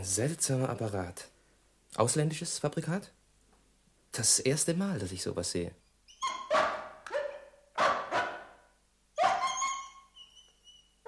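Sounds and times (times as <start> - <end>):
speech: 0.0 - 1.3, 1.9 - 3.2, 4.1 - 6.4
dog barking, yelping and whining: 6.1 - 11.0.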